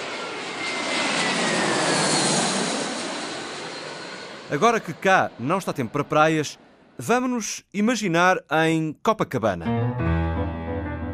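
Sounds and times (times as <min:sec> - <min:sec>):
airplane engine roar: 0:00.0 - 0:07.0
speech: 0:04.5 - 0:10.1.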